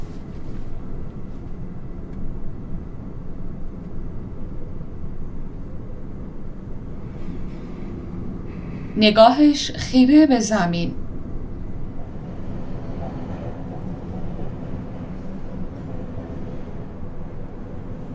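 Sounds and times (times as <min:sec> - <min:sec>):
metro train running through a tunnel heard from inside the metro car: 0:00.0 - 0:18.1
speech: 0:09.0 - 0:11.0.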